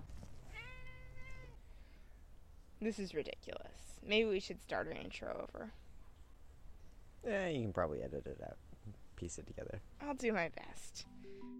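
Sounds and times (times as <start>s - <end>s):
cat meowing: 0.5s - 1.6s
speech: 2.8s - 5.8s, 7.2s - 11.5s.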